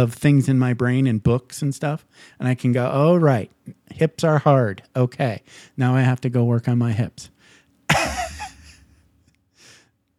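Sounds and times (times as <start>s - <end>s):
speech: 0.0s - 7.3s
sharp loud cough: 7.9s - 8.6s.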